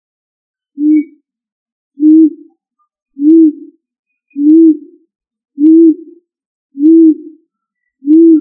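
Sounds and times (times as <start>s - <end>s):
pigeon giving low hollow coos: 0.8s - 1.1s, 3.2s - 3.7s, 4.4s - 5.0s, 5.6s - 6.2s, 6.8s - 7.4s, 8.0s - 8.3s.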